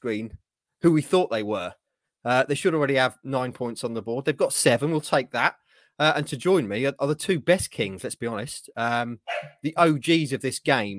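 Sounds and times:
speech: 0.0s - 10.9s
dog barking: 9.3s - 9.6s.

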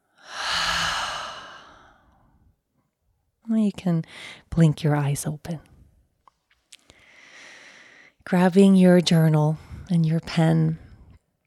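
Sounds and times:
deep breath exhaled out through the mouth during a cleansing-breath exercise: 0.2s - 2.1s
speech: 3.5s - 5.7s, 8.2s - 10.8s.

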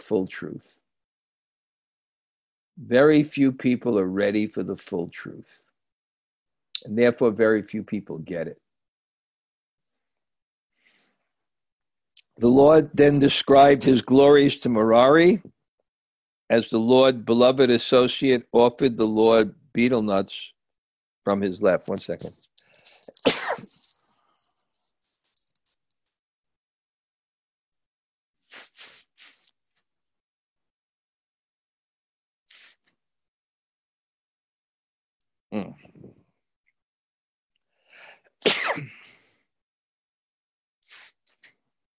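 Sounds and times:
speech: 0.1s - 0.8s, 2.8s - 5.7s, 6.8s - 8.6s, 12.4s - 15.6s, 16.5s - 20.6s, 21.2s - 22.5s, 35.5s - 36.1s, 38.4s - 39.0s
sharp loud sneezes: 22.9s - 24.1s, 38.4s - 39.2s
quieter breathy sniffs: 28.4s - 29.6s, 32.5s - 33.0s, 40.8s - 41.6s.

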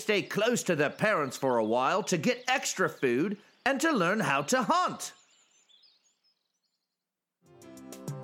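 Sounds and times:
speech: 0.0s - 5.2s
young golden eagles chirping: 0.0s - 6.8s
music: 7.5s - 8.2s.

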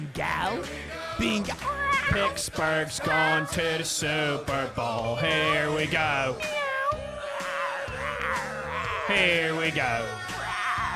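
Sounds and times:
speech: 0.2s - 6.6s, 9.1s - 10.2s
cat meowing with a yowling edge: 6.4s - 8.6s.

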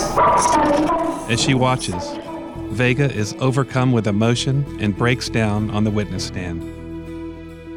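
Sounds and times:
dog barking: 0.2s - 1.3s
speech: 0.4s - 6.8s.

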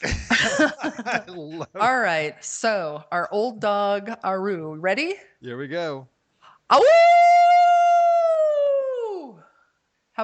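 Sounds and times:
laughter: 0.0s - 2.2s
speech: 1.1s - 6.1s, 6.7s - 7.7s
person howling: 6.8s - 9.4s.

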